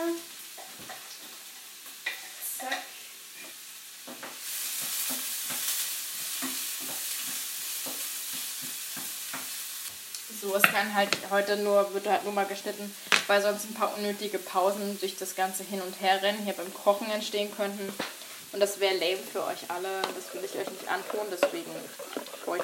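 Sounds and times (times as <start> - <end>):
garlic frying and sizzling in a pan: 0.0 - 22.6
speech: 10.4 - 22.6
clattering and stirring in a pan: 17.6 - 22.6.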